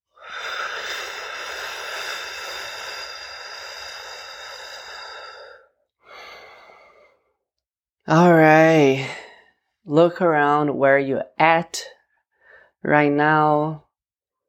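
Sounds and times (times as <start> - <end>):
deep breath in and out: 0.1 - 7.3, 12.3 - 12.8
speech: 8.1 - 9.1, 10.0 - 12.0, 12.8 - 13.8.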